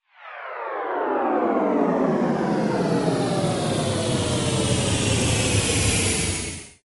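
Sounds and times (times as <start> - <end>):
spaceship landing alert: 0.2 - 6.7.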